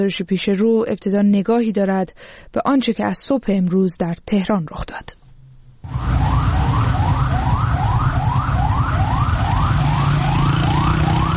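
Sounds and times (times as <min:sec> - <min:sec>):
speech: 0:00.0 - 0:05.2
emergency vehicle sirens whooping: 0:05.9 - 0:11.3
heavy rumble of engines and street traffic: 0:05.9 - 0:11.3.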